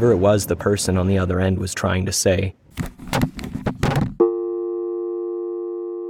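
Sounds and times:
speech: 0:00.0 - 0:03.0
steady electronic phone line tone: 0:04.2 - 0:06.0.

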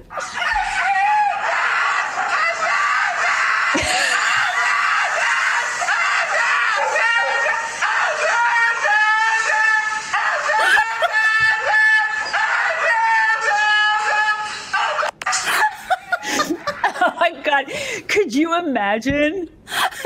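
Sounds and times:
husky howling and screaming at groomer: 0:00.0 - 0:15.2
laughter: 0:00.0 - 0:17.5, 0:19.7 - 0:20.0
speech: 0:18.6 - 0:19.6.

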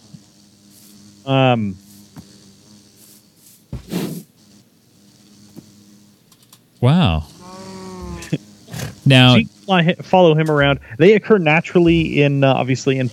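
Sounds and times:
bee buzzing: 0:00.0 - 0:13.1
speech: 0:01.2 - 0:01.8, 0:06.8 - 0:07.2, 0:09.1 - 0:13.1
loud vocal exclamation: 0:07.4 - 0:09.5.

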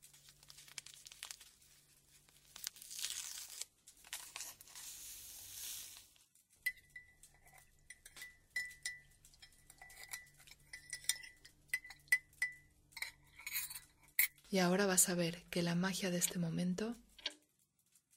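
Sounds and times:
sugar being poured into coffee: 0:00.1 - 0:14.4
spoon stirring briskly and clinking against a coffee cup: 0:06.6 - 0:14.4
speech: 0:14.5 - 0:17.1.

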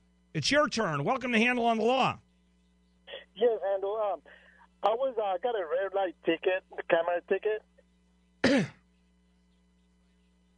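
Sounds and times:
faint steady hum: 0:00.0 - 0:10.5
speech: 0:00.4 - 0:02.2, 0:03.4 - 0:07.7, 0:08.4 - 0:08.8
person coughing: 0:08.4 - 0:08.8.

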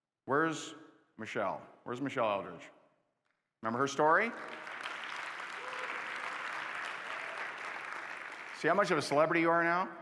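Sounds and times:
speech: 0:00.3 - 0:02.8, 0:03.6 - 0:04.7, 0:08.6 - 0:10.0
sustained applause from a large audience: 0:04.4 - 0:09.1.

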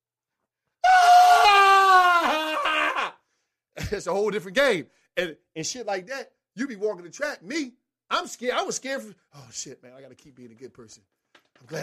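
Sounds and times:
person vocally imitating a pained scream: 0:00.8 - 0:03.2
speech: 0:03.9 - 0:11.8.

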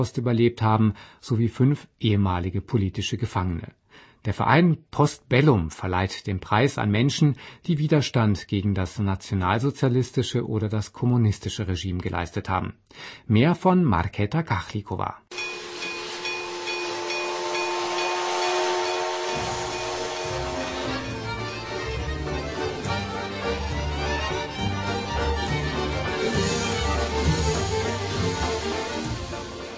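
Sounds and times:
speech: 0:00.0 - 0:15.5
steam train hiss: 0:15.3 - 0:21.3, 0:26.3 - 0:29.7
steam train whistle on a theatre stage: 0:15.3 - 0:29.7.

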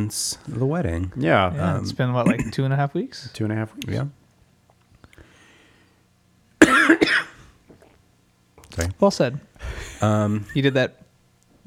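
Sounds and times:
speech: 0:00.0 - 0:04.2, 0:08.8 - 0:11.0
dry cough: 0:02.2 - 0:02.6, 0:06.6 - 0:07.6.

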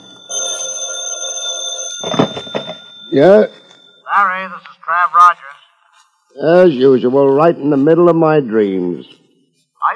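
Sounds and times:
telephone bell ringing: 0:00.0 - 0:04.3
telephone handset being picked up: 0:02.0 - 0:03.9
speech: 0:03.1 - 0:03.6, 0:04.2 - 0:05.6, 0:06.4 - 0:09.2.

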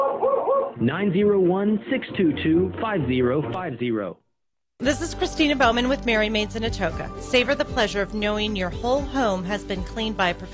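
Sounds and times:
dog barking and yowling over a radio: 0:00.0 - 0:00.8
speech: 0:00.8 - 0:04.2, 0:04.8 - 0:10.5.

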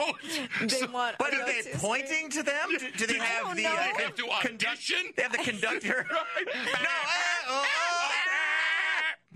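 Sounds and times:
laughter: 0:00.0 - 0:00.8, 0:05.3 - 0:09.3
speech: 0:00.0 - 0:07.9
goats screaming in a Christmas carol on a novelty recording: 0:07.5 - 0:09.2.

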